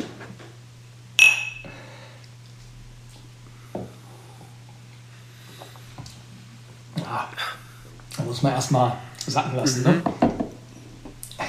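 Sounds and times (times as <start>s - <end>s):
steady low hum: 1.0s - 3.7s
whisky glasses clinking in a toast: 1.2s - 1.8s
speech: 8.2s - 10.2s.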